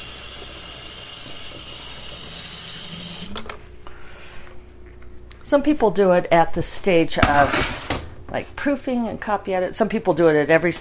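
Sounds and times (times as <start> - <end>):
tap water running into a tea kettle: 0.0 - 3.6
quiet hum: 0.1 - 10.7
tap flow shutting off with clicks: 0.4 - 3.7
speech: 5.5 - 10.7.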